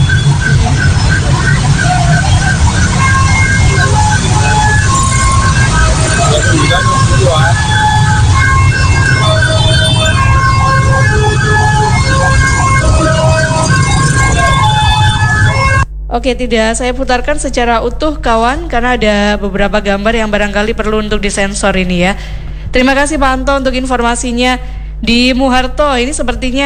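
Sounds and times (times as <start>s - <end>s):
heavy traffic rumble: 0.0s - 15.8s
ambulance siren wailing at accident scene: 0.0s - 15.9s
car horns: 0.0s - 15.9s
speech: 16.2s - 26.6s.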